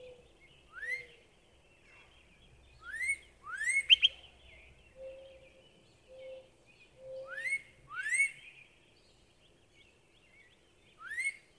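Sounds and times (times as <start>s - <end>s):
northern cardinal whistled song: 0.7s - 1.2s, 2.8s - 4.3s, 7.2s - 8.6s, 10.9s - 11.4s.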